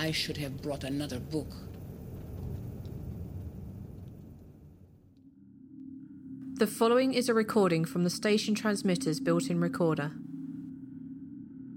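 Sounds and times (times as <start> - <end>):
speech: 0.0 - 1.8, 6.6 - 10.3
winter storm wind roaring outside on Svalbard: 0.0 - 5.0.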